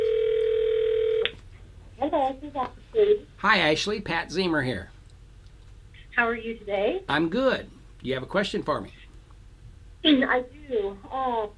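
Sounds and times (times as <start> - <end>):
telephone dial tone as a call is dialled: 0.0 - 1.3
speech: 2.2 - 5.0, 6.2 - 9.0, 10.0 - 11.5.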